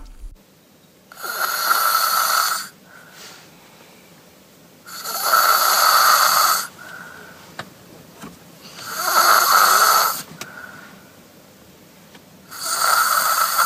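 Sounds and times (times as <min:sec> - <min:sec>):
child snoring: 0:01.1 - 0:02.8, 0:04.9 - 0:06.7, 0:08.6 - 0:10.3, 0:12.5 - 0:13.6
child quiet breathing: 0:02.7 - 0:04.3, 0:06.6 - 0:07.6, 0:09.8 - 0:11.3.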